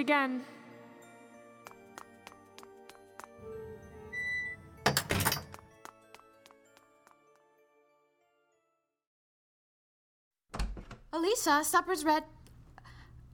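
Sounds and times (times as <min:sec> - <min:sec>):
speech: 0:00.0 - 0:00.6, 0:11.1 - 0:12.4
side door creaking open: 0:03.5 - 0:05.7, 0:10.5 - 0:11.1
side door shutting with a solid thunk: 0:03.8 - 0:05.7, 0:10.5 - 0:11.1.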